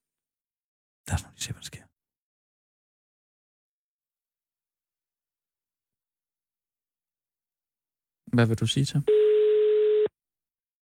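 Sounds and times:
speech: 1.1 - 1.9, 8.3 - 9.3
telephone busy signal: 9.1 - 10.1.

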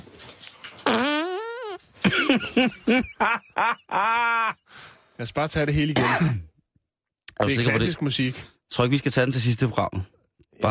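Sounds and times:
squeaky tonal farts: 0.7 - 1.9
laughter: 2.0 - 4.7
speech: 2.3 - 6.5, 7.4 - 10.6.

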